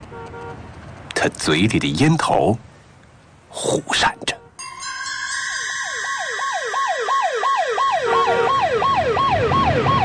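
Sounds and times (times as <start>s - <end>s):
road noise from a moving police car: 0.0s - 10.0s
speech: 0.2s - 2.7s, 3.5s - 4.4s
police car siren yelping: 5.3s - 10.0s.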